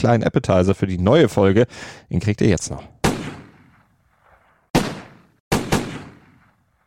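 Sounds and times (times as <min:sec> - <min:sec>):
speech: 0:00.0 - 0:03.0
gunshots in a discotheque parking lot beside an expressway near Medellín, Colombia: 0:03.0 - 0:06.8.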